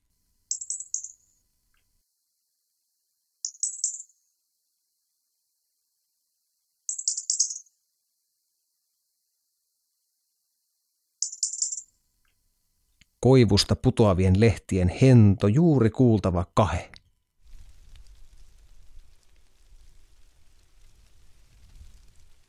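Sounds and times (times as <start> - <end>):
European robin ticking call from spruces: 0.5 - 1.2, 3.4 - 4.1, 6.9 - 7.7, 11.2 - 11.8
speech: 13.2 - 17.0.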